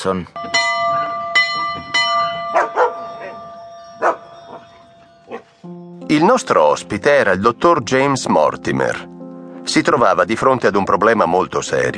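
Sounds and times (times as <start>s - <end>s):
speech: 0.0s - 0.6s, 6.1s - 11.9s
doorbell ringing at the front door: 0.4s - 5.3s
dog barking in front of the door: 2.5s - 3.4s, 4.0s - 5.5s.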